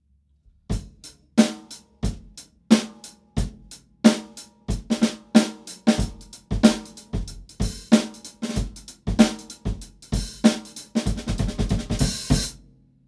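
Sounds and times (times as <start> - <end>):
full drum kit with 22-inch bass drum and 14-inch snare: 0.7 - 12.6
22-inch bass drum: 6.0 - 8.0, 8.6 - 12.6.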